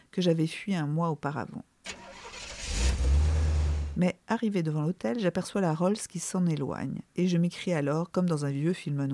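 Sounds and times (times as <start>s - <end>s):
speech: 0.1s - 1.7s, 4.0s - 9.1s
taxi car engine starting on a street: 1.9s - 4.0s.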